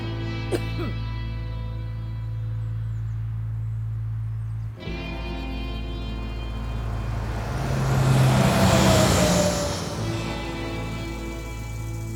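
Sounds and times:
bus engine drone: 0.0 - 12.1
road noise of a passing bus: 4.8 - 12.1.

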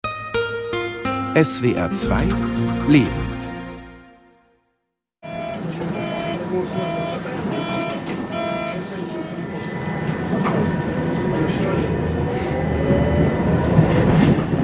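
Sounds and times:
speech: 1.4 - 3.4, 6.6 - 7.2
streetcar rolling along its rails: 5.3 - 14.6.

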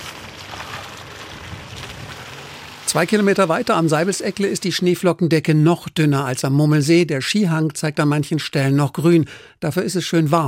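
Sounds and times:
faint low rumble: 0.0 - 2.9
car tires rolling through slushy wet snow: 0.0 - 5.3
speech: 2.9 - 10.4.

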